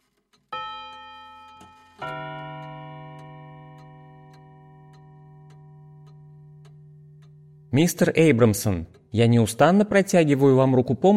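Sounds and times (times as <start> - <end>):
old grandfather clock pendulum ticking: 0.0 - 10.8
speech: 7.7 - 11.1.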